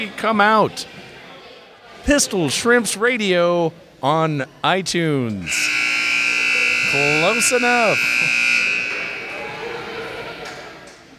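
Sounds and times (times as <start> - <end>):
speech: 0.0 - 1.0, 2.0 - 5.8, 6.9 - 8.4
crowd noise: 0.0 - 11.1
loud harsh game buzzer: 5.4 - 10.4.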